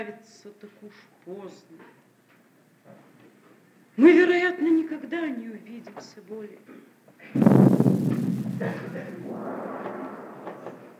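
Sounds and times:
speech: 0.0s - 2.0s, 2.9s - 3.2s, 4.0s - 10.0s
cannon salute shot booming: 7.4s - 10.9s.

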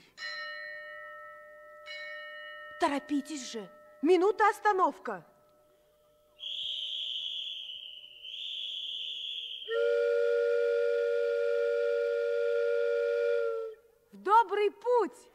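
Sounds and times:
speech: 2.8s - 5.3s, 14.5s - 15.3s
steam locomotive whistle as the train departs: 6.4s - 13.8s.

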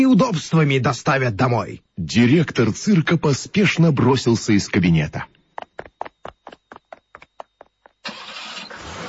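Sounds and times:
speech: 0.0s - 5.4s
car engine cranking, starting and running: 8.0s - 9.0s.

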